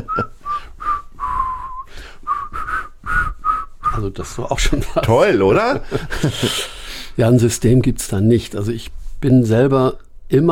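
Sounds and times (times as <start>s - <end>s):
laughter: 0.0s - 0.3s, 4.6s - 6.8s
person whistling a short tune: 0.0s - 4.1s
speech: 4.0s - 10.5s.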